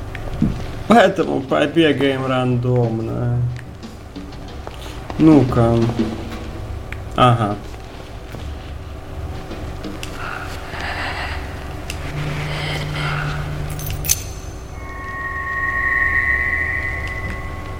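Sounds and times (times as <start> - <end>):
speech: 0.4 - 3.6, 5.2 - 6.2, 7.2 - 7.7
thin sustained ringing tone: 12.1 - 17.7
keys clinking as they are picked up: 13.7 - 14.6.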